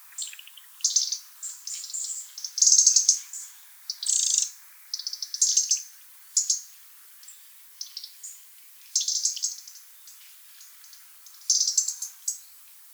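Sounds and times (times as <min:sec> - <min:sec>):
European robin chirping and twittering: 0:00.1 - 0:05.8, 0:09.0 - 0:10.2, 0:10.8 - 0:12.4.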